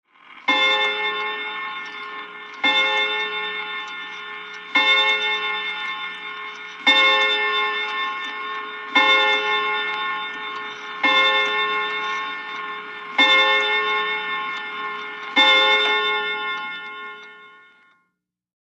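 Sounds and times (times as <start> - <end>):
mantle clock striking: 0.3 - 18.0.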